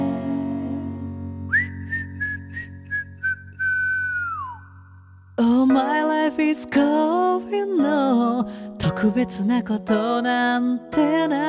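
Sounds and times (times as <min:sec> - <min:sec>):
steady music: 0:00.0 - 0:03.7, 0:05.4 - 0:11.4
person whistling a melody: 0:01.4 - 0:05.0
speech: 0:08.4 - 0:11.4.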